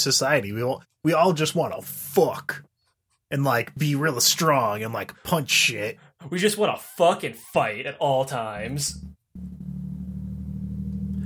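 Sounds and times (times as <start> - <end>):
speech: 0.0 - 2.7, 3.3 - 9.2
truck engine rumble driving down to the lower lots: 8.7 - 11.2.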